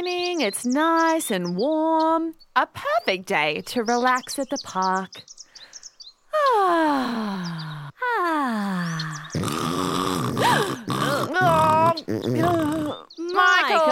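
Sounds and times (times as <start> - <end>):
speech: 0.0 - 5.4, 6.3 - 13.9
person imitating snoring while asleep at a park: 8.4 - 13.1
exaggerated snorting and grunting noises: 9.3 - 13.1.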